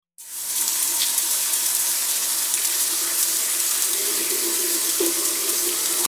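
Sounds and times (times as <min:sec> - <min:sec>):
shower running: 0:00.2 - 0:06.0.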